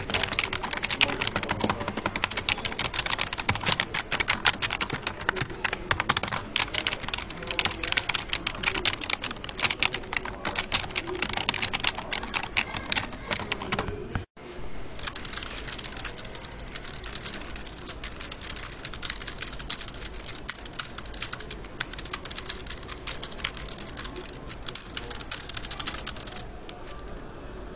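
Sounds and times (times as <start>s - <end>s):
keyboard typing: 0.0s - 14.3s, 15.0s - 27.0s.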